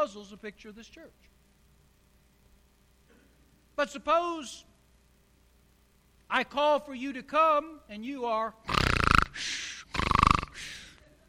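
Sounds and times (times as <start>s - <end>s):
speech: 0.0s - 1.4s, 3.8s - 4.7s, 6.3s - 9.7s
person imitating snoring: 8.7s - 10.9s
breathy hissing exhale: 8.7s - 11.0s.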